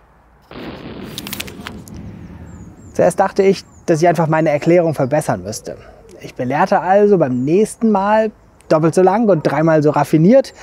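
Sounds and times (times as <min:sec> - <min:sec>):
fireworks sound effect with whooshing burst and crackling pops: 0:00.5 - 0:03.9
speech: 0:03.0 - 0:10.6.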